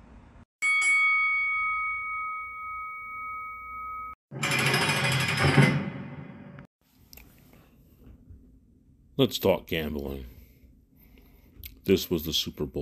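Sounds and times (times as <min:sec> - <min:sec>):
bell ringing: 0:00.6 - 0:06.6
harsh rattling noise: 0:04.3 - 0:06.7
speech: 0:09.2 - 0:10.4, 0:11.9 - 0:12.7.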